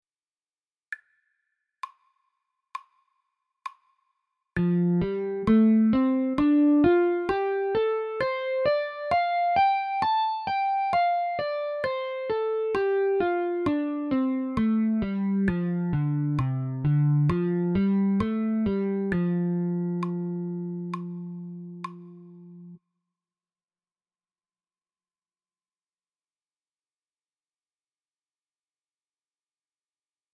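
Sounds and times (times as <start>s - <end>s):
guitar notes A and G across three octaves: 4.6s - 22.8s.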